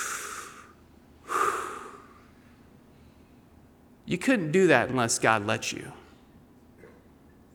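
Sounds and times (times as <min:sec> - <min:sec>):
deep breath with a slight nasal snort: 0:00.0 - 0:03.4
speech: 0:04.1 - 0:06.0.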